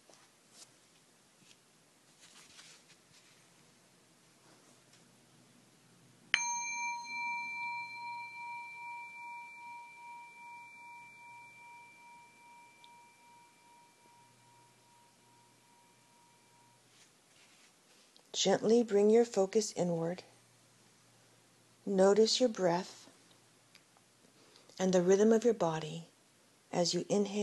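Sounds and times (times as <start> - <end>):
faint rustling: 0.0 - 5.1, 15.1 - 18.3
meditation bowl struck and ringing: 6.3 - 17.0
speech: 18.3 - 20.3, 21.8 - 23.0, 24.8 - 26.1, 26.7 - 27.4.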